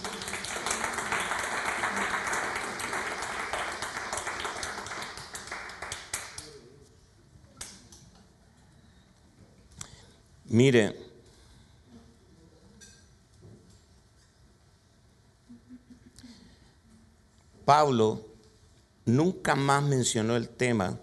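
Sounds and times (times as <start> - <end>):
crowd applauding: 0.0 - 6.6
speech: 10.5 - 11.0, 17.7 - 18.3, 19.1 - 21.0.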